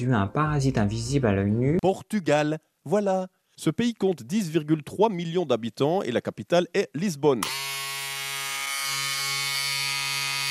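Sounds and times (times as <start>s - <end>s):
speech: 0.0s - 7.7s
electric razor buzzing: 7.4s - 10.4s.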